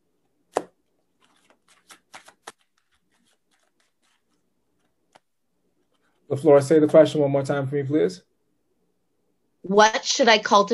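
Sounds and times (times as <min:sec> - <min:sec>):
tarot cards being shuffled: 0:00.5 - 0:06.3
speech: 0:06.3 - 0:08.3, 0:09.7 - 0:10.7.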